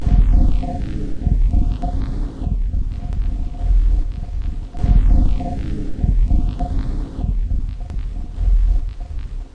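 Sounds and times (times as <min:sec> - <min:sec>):
thuddy rhythm ambience: 0:00.0 - 0:09.5.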